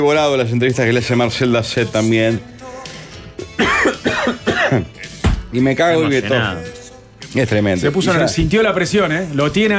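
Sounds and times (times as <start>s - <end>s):
speech: 0.0s - 2.6s, 4.7s - 9.7s
harsh throaty coughs: 3.4s - 5.2s.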